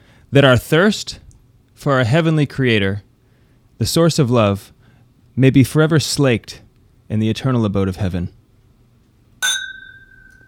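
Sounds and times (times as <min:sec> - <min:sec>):
speech: 0:00.3 - 0:01.2, 0:01.8 - 0:03.1, 0:03.8 - 0:04.8, 0:05.4 - 0:08.4
glasses clinking in a toast: 0:09.4 - 0:10.4.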